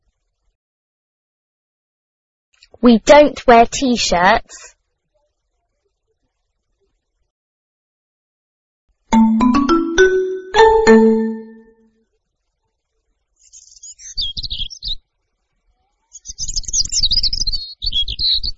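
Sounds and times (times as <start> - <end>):
speech: 2.6 - 4.8
quick run of bright chiming notes: 9.2 - 11.8.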